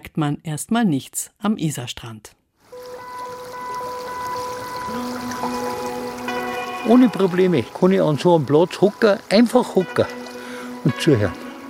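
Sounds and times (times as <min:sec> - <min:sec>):
speech: 0:00.2 - 0:02.4, 0:06.8 - 0:10.2, 0:10.8 - 0:11.4
wild river flowing past riverbank: 0:02.7 - 0:11.6.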